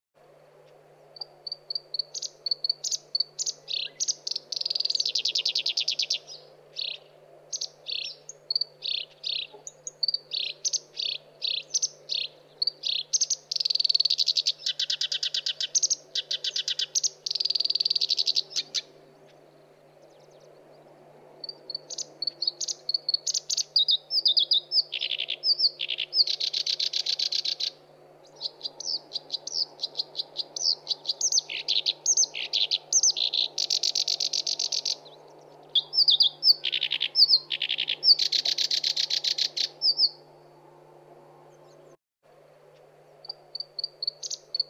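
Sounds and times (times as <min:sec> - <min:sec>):
black-browed reed warbler calling: 0:00.6 - 0:40.6, 0:42.7 - 0:44.6.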